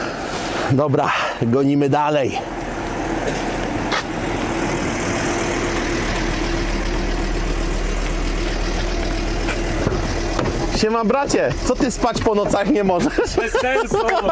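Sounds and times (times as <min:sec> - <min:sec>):
speech: 0:00.7 - 0:02.5, 0:10.8 - 0:14.3
Crafter tow truck engine arriving and idling: 0:02.4 - 0:14.3
laughter: 0:12.8 - 0:14.3.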